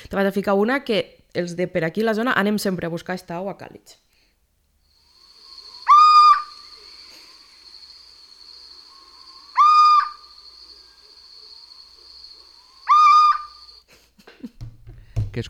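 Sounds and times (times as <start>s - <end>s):
speech: 0.1s - 4.1s
steady high insect-like whine: 4.9s - 13.8s
little owl calling: 5.0s - 13.8s.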